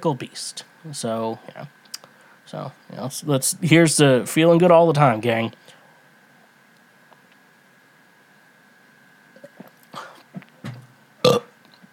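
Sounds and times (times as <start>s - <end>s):
speech: 0.0s - 1.8s, 2.5s - 5.8s
faint steady hum: 0.0s - 11.9s
loud burp: 11.2s - 11.6s.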